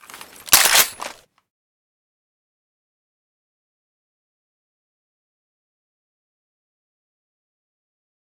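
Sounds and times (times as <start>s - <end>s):
weapon misfire: 0.5s - 1.2s.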